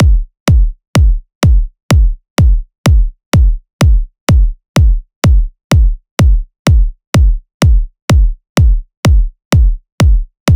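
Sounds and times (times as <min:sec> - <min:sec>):
kick drum: 0:00.0 - 0:10.5.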